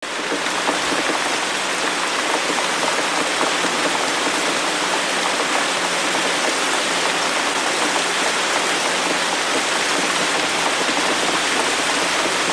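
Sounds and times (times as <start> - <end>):
water: 0.0 - 12.5.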